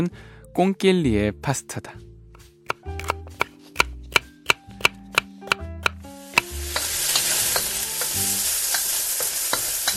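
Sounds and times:
speech: 0.0s - 2.1s
knife chopping on a board: 2.4s - 6.9s
bacon and onion sizzling in a hot pan: 6.0s - 9.9s.

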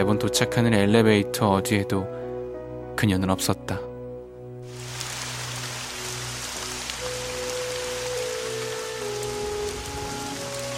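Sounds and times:
speech: 0.0s - 2.2s, 3.0s - 3.9s
heavy rain shower pouring down late at night: 4.6s - 10.7s.

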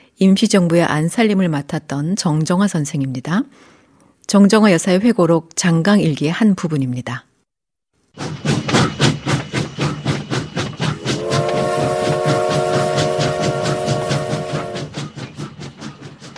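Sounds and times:
speech: 0.2s - 7.3s
steam train chugging through the night toward Shanghai: 8.2s - 16.3s
long multi-tone steam train whistle: 11.0s - 14.9s.

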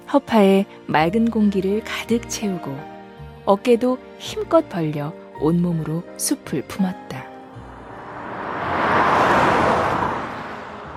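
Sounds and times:
speech: 0.1s - 2.9s, 3.5s - 7.3s
car passing by on a road: 7.6s - 10.9s
steady traffic noise: 7.6s - 10.9s.

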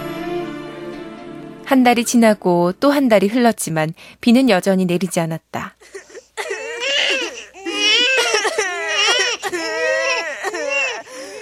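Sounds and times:
speech: 1.7s - 6.0s
hungry infant crying: 5.8s - 11.4s.

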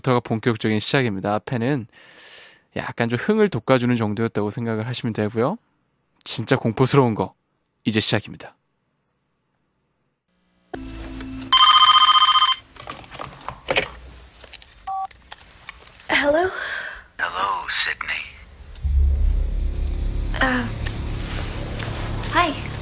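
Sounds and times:
speech: 0.0s - 8.6s, 17.7s - 18.3s, 20.4s - 20.8s
telephone bell ringing: 10.7s - 13.0s, 14.9s - 15.1s
low rumble: 18.4s - 22.8s.

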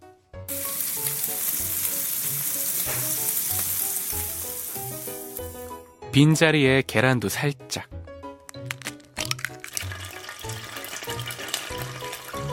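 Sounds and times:
opened canned ham sizzling in a frying pan in a kitchen: 0.5s - 5.7s, 9.4s - 12.5s
speech: 6.1s - 8.0s.

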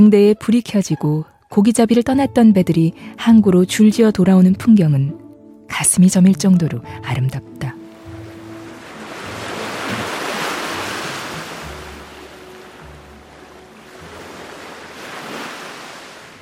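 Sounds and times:
speech: 0.0s - 7.8s
rough winter sea waves surging: 7.8s - 16.4s.

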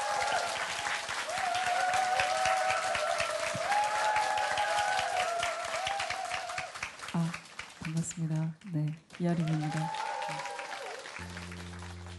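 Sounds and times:
faint cheering or voices in the crowd: 0.0s - 6.8s, 9.4s - 12.1s
audience applause welcoming a musician: 0.0s - 12.1s
speech: 8.2s - 10.0s.

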